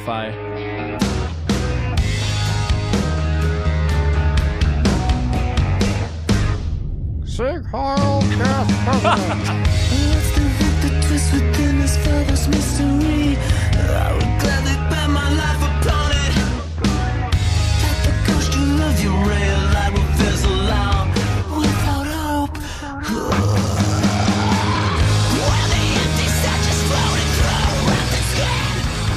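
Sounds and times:
speech: 0.0s - 1.0s, 7.4s - 16.3s
hardcore band playing a breakdown: 0.4s - 6.9s, 7.8s - 22.0s, 23.4s - 29.1s
laughter: 8.3s - 10.1s
harsh screamed vocals: 22.8s - 28.9s.

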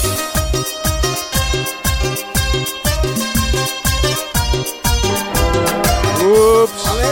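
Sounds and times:
lively Peruvian song with punchy beat and bright layered instruments played on air: 0.0s - 7.1s
sliding melodic line: 5.0s - 6.8s.

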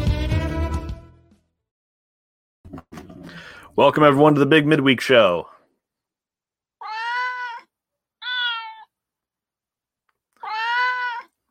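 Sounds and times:
speech: 3.8s - 5.5s
cat meowing: 6.8s - 9.0s, 10.4s - 11.4s.

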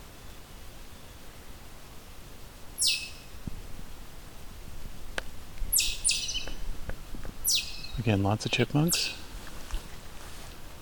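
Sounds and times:
quiet woodland ambience: 0.0s - 10.7s
pine warbler soft high trill: 2.8s - 3.3s, 5.7s - 6.6s, 7.4s - 9.2s
speech: 8.0s - 9.2s.

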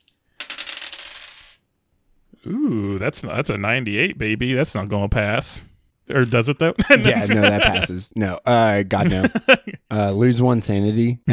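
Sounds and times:
two dice clattering across a hard surface: 0.0s - 1.7s
speech: 2.4s - 11.3s
laughter: 2.5s - 10.2s.

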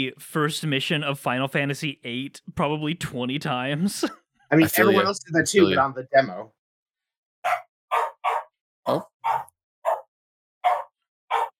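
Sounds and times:
speech: 0.0s - 6.6s, 8.9s - 9.4s
dog barking: 7.4s - 8.6s, 9.2s - 11.5s.

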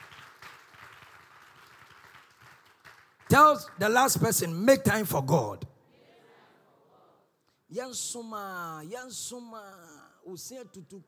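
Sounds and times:
crowd clapping: 0.0s - 4.6s
speech: 3.3s - 5.7s, 7.8s - 11.0s.

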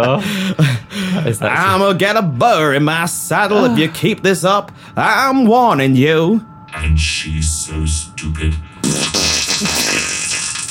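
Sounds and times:
speech: 0.0s - 9.9s
loud drawn-out sputtering fart: 8.8s - 10.6s.

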